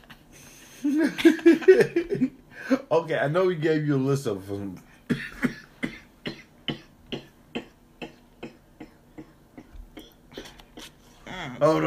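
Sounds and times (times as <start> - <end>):
speech: 0.8 - 5.3, 11.6 - 11.8
person coughing from choking on pepper stuck in the throat: 5.1 - 11.0.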